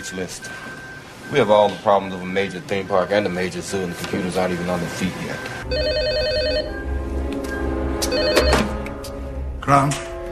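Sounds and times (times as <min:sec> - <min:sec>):
speech: 0:00.0 - 0:06.9, 0:09.7 - 0:10.1
telephone ringing with an electronic trill: 0:03.7 - 0:06.8, 0:08.1 - 0:08.8.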